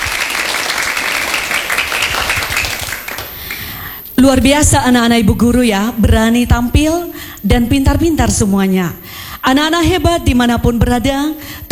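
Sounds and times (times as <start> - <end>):
enthusiastic applause for children after a poetry recital at a school event: 0.0 - 3.8
speech: 4.2 - 11.7.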